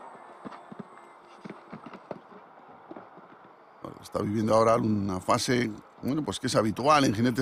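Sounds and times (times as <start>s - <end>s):
horse hooves cantering on soft ground toward a triple-bar jump in show jumping: 0.0s - 5.0s
speech: 4.0s - 7.3s.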